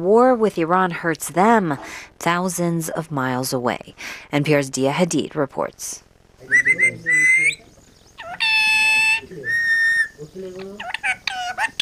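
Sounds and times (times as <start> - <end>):
speech: 0.0 - 7.6
parrot squawking and whistling on a balcony: 6.5 - 10.2, 10.8 - 11.8.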